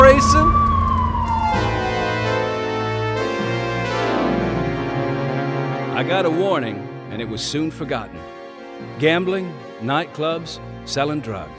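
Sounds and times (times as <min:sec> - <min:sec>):
steady low rumble: 0:00.0 - 0:05.0
sheriff's car police siren wailing: 0:00.0 - 0:05.6
speech: 0:06.1 - 0:11.5.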